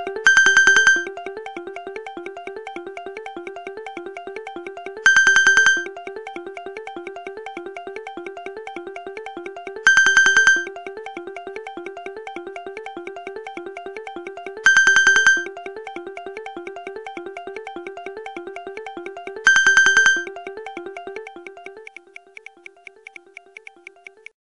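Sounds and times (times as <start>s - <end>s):
mobile phone clock alarm tone: 0.3s - 1.1s, 5.1s - 5.9s, 9.9s - 10.7s, 14.7s - 15.5s, 19.5s - 20.3s.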